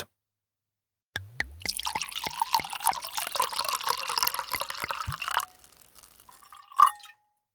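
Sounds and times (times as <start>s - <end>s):
wine glugging from a bottle into a glass: 1.6s - 7.1s
soft clink of glass: 1.7s - 7.2s.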